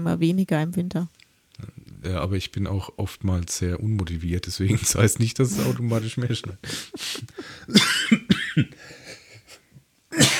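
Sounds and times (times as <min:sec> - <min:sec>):
speech: 0:00.0 - 0:09.0
laughter: 0:04.6 - 0:08.2
person coughing harshly: 0:06.7 - 0:09.0, 0:10.1 - 0:10.3.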